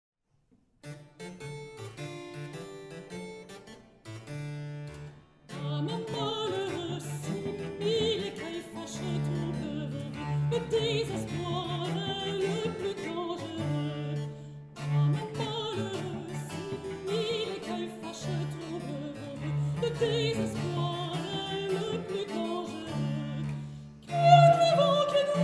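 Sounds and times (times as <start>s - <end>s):
soprano voice: 5.5s - 25.4s.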